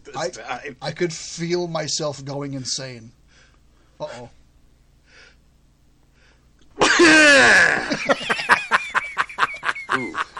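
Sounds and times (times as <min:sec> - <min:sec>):
speech: 0:00.2 - 0:03.2, 0:04.0 - 0:04.4, 0:07.0 - 0:08.3, 0:10.0 - 0:10.3
person sneezing: 0:06.8 - 0:07.9
laughter: 0:06.8 - 0:10.3.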